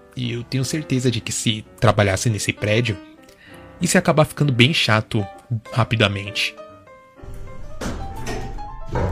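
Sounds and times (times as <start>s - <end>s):
speech: 0.2s - 3.1s, 3.8s - 6.6s
elevator doors clunking and sliding open: 7.2s - 9.1s
heavy thunk: 7.3s - 9.1s.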